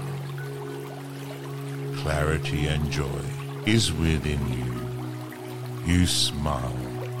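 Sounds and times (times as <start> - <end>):
running water while washing hands: 0.0 - 7.1
speech: 2.0 - 4.9, 5.8 - 6.9.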